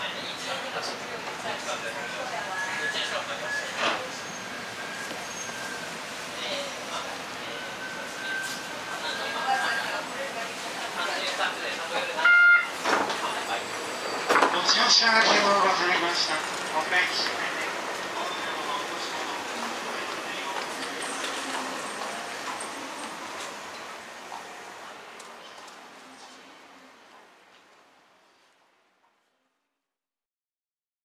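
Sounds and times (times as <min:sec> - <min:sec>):
voices: 0:00.0 - 0:27.5
Kitakyushu Monorail 1000 series train arriving at Kokura terminal station: 0:00.0 - 0:29.2
short squeal of monorail train: 0:02.5 - 0:05.9
speech: 0:15.0 - 0:17.5.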